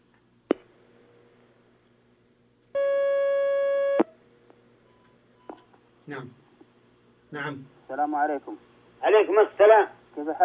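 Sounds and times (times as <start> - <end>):
steady bright electronic telephone line tone as a call comes in: 2.8 - 4.1
speech: 6.1 - 6.4, 7.3 - 10.4.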